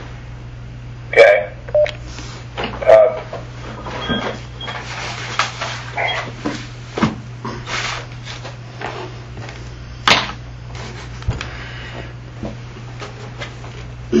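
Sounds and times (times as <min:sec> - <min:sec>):
steady low electrical hum: 0:00.0 - 0:14.1
telephone keypad dialing tones: 0:01.7 - 0:02.0.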